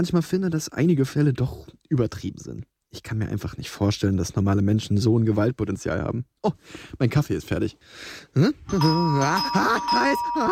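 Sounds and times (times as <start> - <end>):
speech: 0.0 - 10.5
wavering voice: 8.5 - 10.5
doorbell ringing with a long shrill tone: 8.7 - 10.5.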